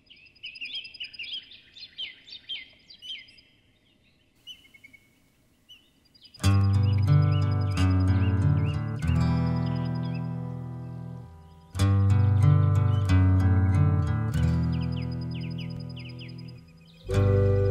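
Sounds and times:
birds chirping and trilling: 0:00.0 - 0:17.7
music: 0:06.4 - 0:17.7.

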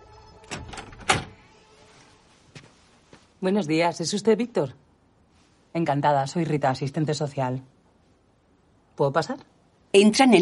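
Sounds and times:
door clunk: 0:00.4 - 0:01.4
speech: 0:03.4 - 0:04.8, 0:05.8 - 0:07.8, 0:09.0 - 0:10.4.

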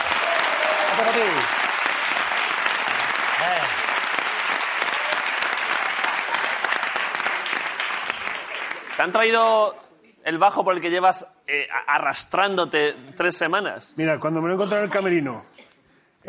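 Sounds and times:
audience members shouting and whooping: 0:00.0 - 0:01.3
audience applause: 0:00.0 - 0:09.4
speech: 0:01.0 - 0:01.7, 0:03.4 - 0:03.8, 0:09.0 - 0:16.2.

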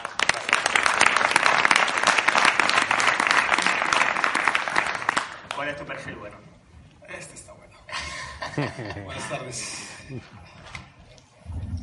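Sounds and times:
audience applauding: 0:00.0 - 0:05.8
speech: 0:05.8 - 0:06.5, 0:08.6 - 0:10.6
laughter: 0:07.9 - 0:10.6.

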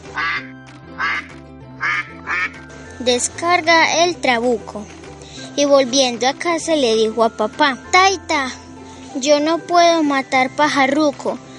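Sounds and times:
duck quacking: 0:00.0 - 0:02.6
speech: 0:03.0 - 0:05.0, 0:05.6 - 0:08.6, 0:09.2 - 0:11.5.

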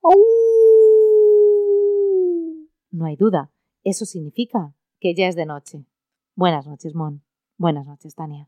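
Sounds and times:
speech: 0:00.0 - 0:00.3, 0:03.0 - 0:08.4
wolf howling: 0:00.0 - 0:02.7.

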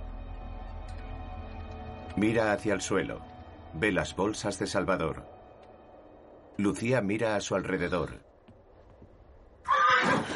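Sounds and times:
speech: 0:02.2 - 0:05.4, 0:06.6 - 0:08.3
horse neighing as it passes by: 0:09.7 - 0:10.3.

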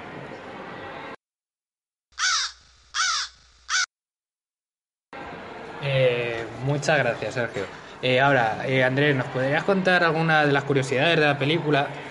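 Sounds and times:
harsh crow caws from a film bird attack scene: 0:02.2 - 0:03.9
speech: 0:05.8 - 0:12.0.

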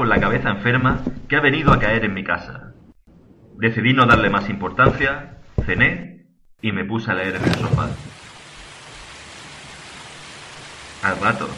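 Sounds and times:
speech: 0:00.0 - 0:02.6, 0:03.6 - 0:08.2, 0:11.0 - 0:11.5
autumn rain pattering against a window: 0:07.3 - 0:11.5.

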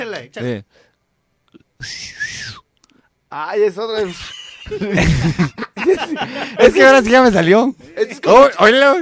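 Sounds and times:
speech: 0:00.2 - 0:00.9, 0:01.5 - 0:02.6, 0:03.3 - 0:09.0
person whistling a loud breathy call: 0:01.8 - 0:02.7
laughter: 0:04.0 - 0:07.1.

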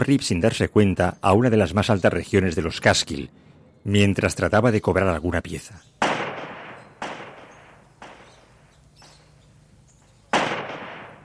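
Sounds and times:
speech: 0:00.0 - 0:06.0
gunshots echoing in the mountains: 0:06.0 - 0:09.3, 0:10.3 - 0:11.2.

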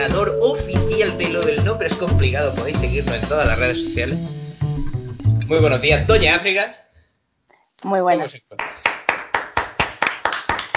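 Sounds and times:
speech: 0:00.0 - 0:04.4, 0:05.5 - 0:06.8, 0:07.8 - 0:08.7
rhythmic hand clapping: 0:08.6 - 0:10.7.

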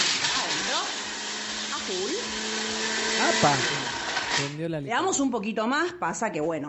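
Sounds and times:
blender blending ice, pineapple, cream, coconut, rum and lime: 0:00.0 - 0:04.5
speech: 0:03.4 - 0:03.8, 0:04.4 - 0:06.6.

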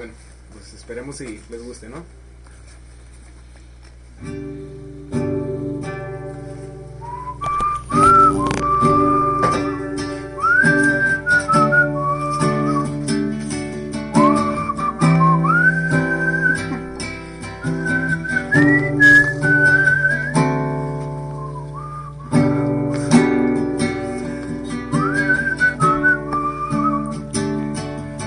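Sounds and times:
speech: 0:00.0 - 0:02.3, 0:04.2 - 0:04.5
steady backing of instruments: 0:03.5 - 0:28.2
person whistling a song melody: 0:06.9 - 0:13.3, 0:13.9 - 0:20.7, 0:21.3 - 0:22.9, 0:24.6 - 0:27.4.

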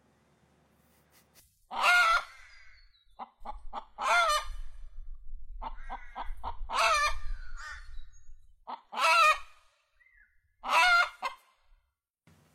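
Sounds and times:
hen clucking and squawking: 0:01.7 - 0:04.7, 0:05.6 - 0:08.0, 0:08.7 - 0:09.6, 0:10.6 - 0:11.4.

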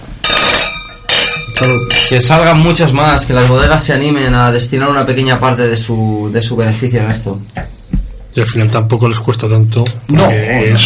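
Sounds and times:
glasses clinking in a toast: 0:00.2 - 0:02.4
speech: 0:01.6 - 0:07.8, 0:08.4 - 0:10.8.

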